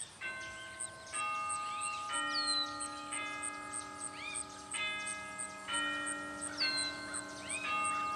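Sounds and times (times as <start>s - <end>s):
faint steady ticking: 0.0s - 8.1s
doorbell playing a slow ringing chime melody: 0.2s - 8.1s.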